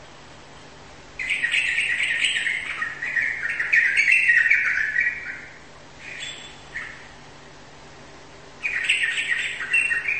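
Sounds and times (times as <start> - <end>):
steady low hum: 0.0 - 10.1
bird singing a dense fast warbling phrase of chirps: 1.2 - 7.2, 8.6 - 10.1.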